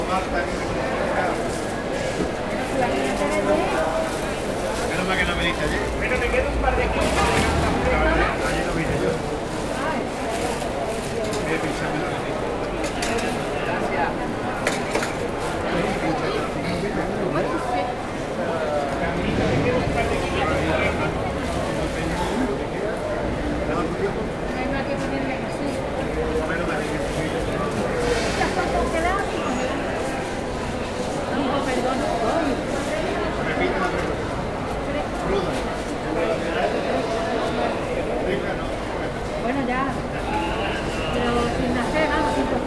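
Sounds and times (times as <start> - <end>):
market hall ambience: 0.0 - 42.6.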